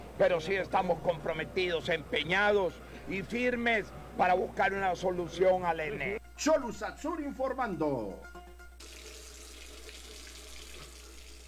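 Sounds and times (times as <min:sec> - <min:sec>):
speech: 0:00.2 - 0:08.4
water running from a faucet: 0:08.8 - 0:11.4.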